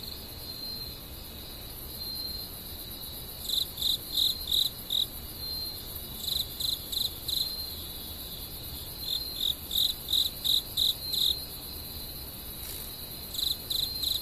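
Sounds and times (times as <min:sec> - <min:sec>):
cricket chirping in quick rhythmic pulses: 0:00.0 - 0:14.1
night chorus of insects trilling in thick undergrowth: 0:00.0 - 0:14.1.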